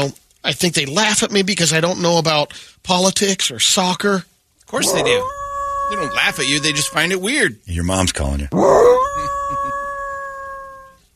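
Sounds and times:
speech: 0.0 - 9.4
mother wolf howling: 4.7 - 7.3, 8.5 - 11.1.

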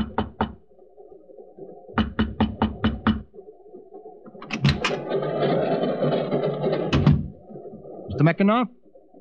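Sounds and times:
knocking on a train compartment door: 2.0 - 3.3
rattling rumbling noise: 4.3 - 8.9
speech: 8.2 - 8.8.

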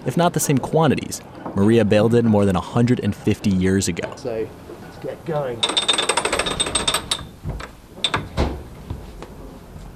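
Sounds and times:
speech: 0.1 - 6.7
metal crank turned to start a water-powered grist mill: 5.6 - 7.3
heavy mechanical clanks: 5.6 - 8.4.

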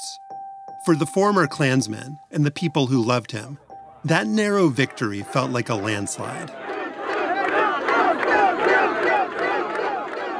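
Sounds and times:
speech: 0.2 - 6.6
dense crowd at an election night party cheering and yelling: 4.0 - 10.3.

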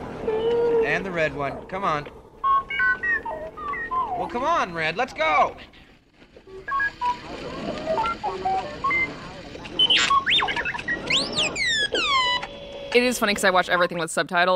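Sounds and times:
speech: 0.9 - 2.2, 4.2 - 5.8, 12.9 - 14.5
robot droid electronic beeps and warbling whistles: 2.4 - 4.6, 6.6 - 12.6.

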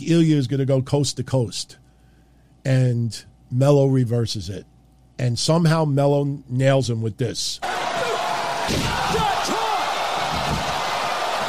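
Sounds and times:
speech: 0.0 - 1.8, 2.6 - 7.7, 8.7 - 9.6
large wrestling arena crowd cheering and yelling: 7.6 - 11.4.

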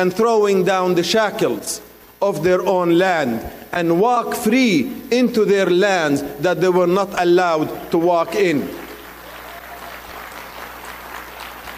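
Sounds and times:
speech: 0.0 - 8.8
sustained applause from an audience: 8.8 - 11.7.

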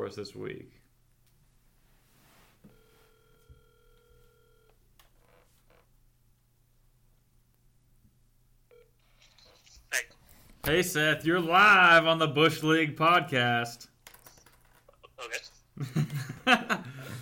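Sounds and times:
faint low electrical hum: 0.0 - 17.1
speech: 0.1 - 0.9, 9.9 - 13.9, 15.2 - 17.1
telephone line tone: 2.7 - 5.9, 8.7 - 9.6.

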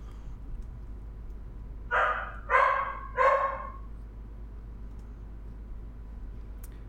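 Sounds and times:
low steady hum: 0.0 - 6.8
anxious young female dog barking: 1.9 - 3.9.

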